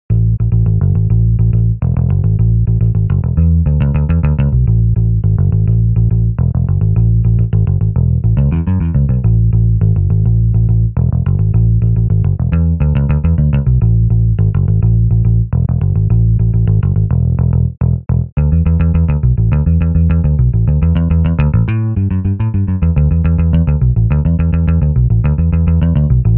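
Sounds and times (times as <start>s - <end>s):
hard rock bass: 0.0s - 26.3s.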